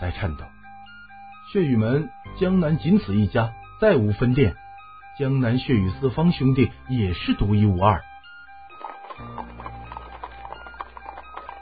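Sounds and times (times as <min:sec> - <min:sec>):
speech: 0:00.0 - 0:00.6, 0:01.5 - 0:04.6, 0:05.2 - 0:08.1
horse hooves galloping outside as riders return and halt at a door: 0:08.7 - 0:11.5.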